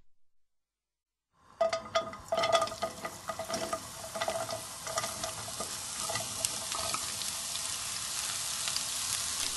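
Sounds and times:
carrot strips frying in hot vegetable oil in a frying pan: 1.4s - 9.5s
wooden spatula scraping and stirring carrots in a frying pan: 1.6s - 7.2s.

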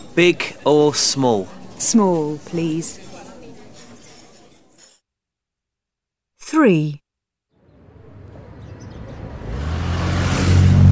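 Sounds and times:
speech: 0.2s - 3.0s, 6.5s - 7.0s
Aston Martin sports car engine revving: 8.8s - 10.8s.

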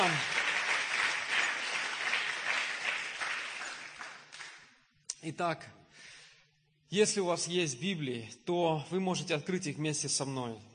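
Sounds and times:
large crowd applauding after a prayer: 0.0s - 4.8s
speech: 5.2s - 5.8s, 6.9s - 10.7s.

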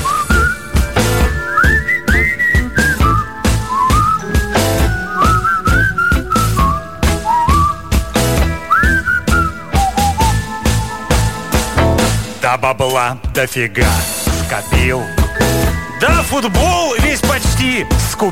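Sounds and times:
person whistling a bright melody: 0.0s - 11.3s, 14.4s - 18.2s
loud instrumental backing with a driving beat: 0.0s - 12.5s, 13.3s - 18.2s
speech: 12.7s - 15.2s, 16.0s - 18.2s.

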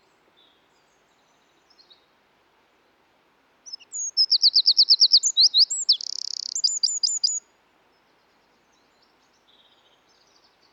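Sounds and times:
Eurasian wren Troglodytes troglodytes singing: 3.7s - 7.4s.

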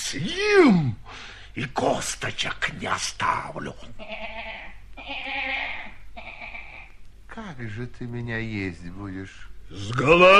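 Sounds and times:
speech: 0.1s - 4.4s, 7.4s - 10.3s
ram bleating: 3.9s - 7.0s.

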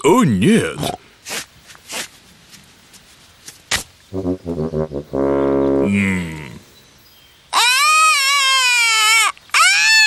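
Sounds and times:
speech: 0.0s - 1.0s, 4.1s - 6.5s
small child crying: 7.6s - 10.0s.

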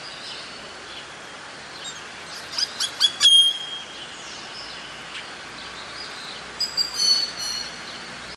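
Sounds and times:
hissy background noise: 0.0s - 8.3s
Greater Antillean grackle calls: 1.8s - 4.1s, 6.6s - 8.0s.

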